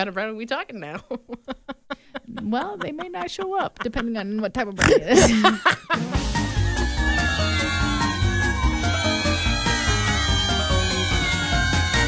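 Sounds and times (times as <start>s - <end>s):
speech: 0.0s - 6.5s
laughter: 0.9s - 12.0s
cat meowing: 6.6s - 12.0s.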